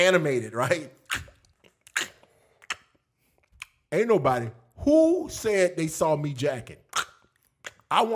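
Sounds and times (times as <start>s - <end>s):
speech: 0.0s - 1.0s, 3.9s - 6.8s, 7.9s - 8.1s
soft mouth smacks: 0.9s - 3.9s, 6.8s - 8.0s
voice imitating noisy chewing of an apple: 0.9s - 3.9s, 6.8s - 8.1s.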